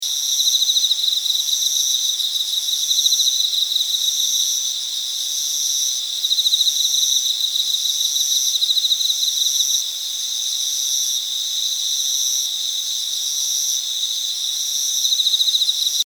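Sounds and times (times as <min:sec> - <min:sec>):
autumn insect sounds: 0:00.0 - 0:16.0.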